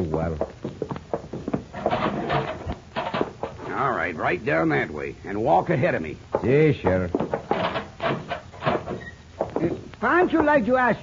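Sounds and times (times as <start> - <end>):
speech: 0.2 - 0.5, 4.1 - 7.5, 10.0 - 11.0
heavy metal cell block door clanking and rattling open: 1.8 - 3.5, 7.4 - 9.2.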